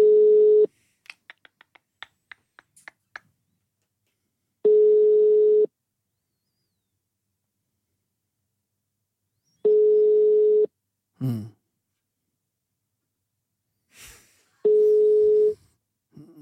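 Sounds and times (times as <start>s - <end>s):
telephone ringing tone of an outgoing call: 0.0s - 0.7s, 4.6s - 5.7s, 9.6s - 10.7s, 14.6s - 15.6s.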